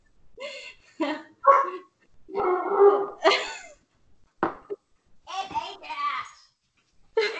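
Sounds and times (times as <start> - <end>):
dogs barking at each other: 1.4 - 3.3.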